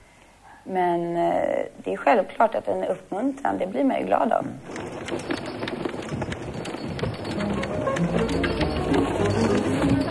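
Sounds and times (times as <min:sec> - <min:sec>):
speech: 0:00.7 - 0:05.4
raindrops pattering: 0:04.6 - 0:10.0.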